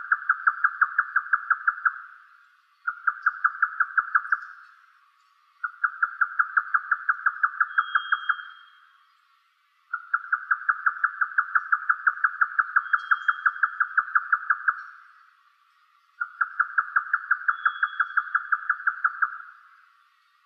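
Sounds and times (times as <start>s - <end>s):
grey nightjar giving rapid evenly spaced knocking notes: 0.0s - 2.2s, 2.8s - 4.8s, 5.6s - 8.9s, 9.9s - 15.2s, 16.2s - 19.6s
faint thin high whistle: 7.7s - 8.9s.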